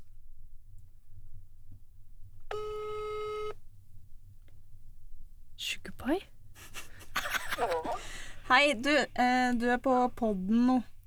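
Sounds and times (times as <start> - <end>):
low hum: 0.0 - 11.0
phone call ringing tone: 2.5 - 3.6
speech: 5.6 - 6.3, 8.5 - 10.9
laughter: 6.6 - 8.5.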